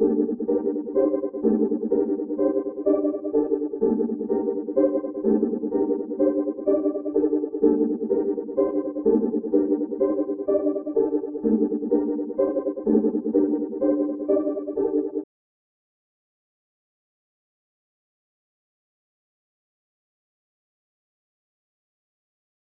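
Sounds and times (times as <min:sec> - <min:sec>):
G minor main chords melody loop at 126 BPM: 0:00.0 - 0:15.2.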